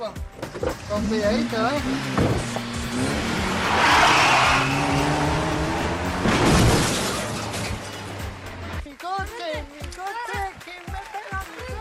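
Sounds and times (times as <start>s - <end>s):
roaring car engines in a film scene: 0.2s - 8.8s
car tyres squealing in a film scene: 0.7s - 8.3s
speech: 1.0s - 4.1s.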